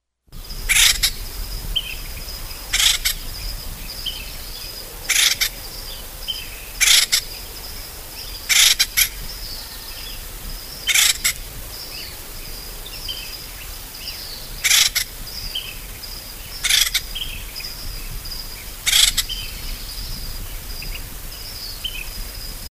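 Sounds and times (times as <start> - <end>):
acorn woodpecker: 0.7 - 1.2, 1.8 - 7.6, 8.2 - 10.2, 10.8 - 15.8, 16.5 - 17.7, 18.8 - 20.0.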